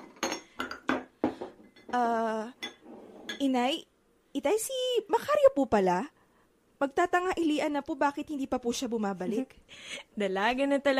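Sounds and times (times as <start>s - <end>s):
dishes clinking as plates are set out for a family meal: 0.0s - 3.5s
speech: 1.9s - 2.6s, 3.4s - 6.2s, 6.8s - 10.9s.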